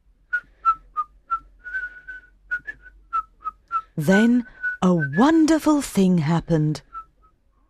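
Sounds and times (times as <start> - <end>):
soft human whistling: 0.3 - 5.2, 6.8 - 7.6
speech: 4.0 - 6.9.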